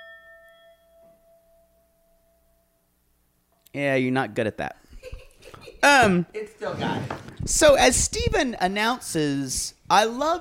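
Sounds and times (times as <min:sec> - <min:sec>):
Tibetan singing bowl ringing: 0:00.0 - 0:03.0
speech: 0:03.7 - 0:04.8, 0:05.8 - 0:10.4.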